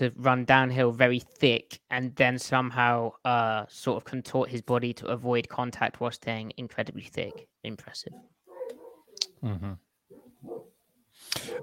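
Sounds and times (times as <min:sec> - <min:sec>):
speech: 0:00.0 - 0:08.4, 0:09.2 - 0:09.8, 0:10.4 - 0:11.6
dog barking and yipping: 0:08.5 - 0:09.1, 0:10.1 - 0:10.7, 0:11.4 - 0:11.6
dog whimpering: 0:08.5 - 0:09.2.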